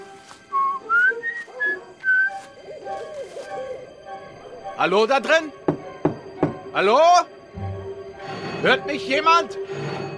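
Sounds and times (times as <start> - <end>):
man whistling a short tune: 0.5 - 2.4
speech: 4.8 - 5.6, 6.8 - 7.4, 8.6 - 9.6.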